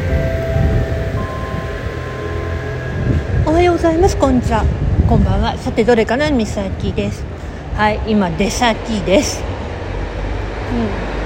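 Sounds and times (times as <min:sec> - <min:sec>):
tonal hum: 0:00.0 - 0:04.9
road traffic outdoors: 0:00.0 - 0:11.2
speech: 0:03.7 - 0:09.5, 0:10.7 - 0:11.0.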